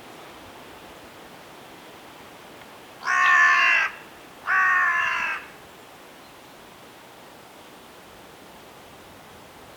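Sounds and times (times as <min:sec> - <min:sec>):
Carrion crow calling long rasping caws: 0:03.0 - 0:05.6.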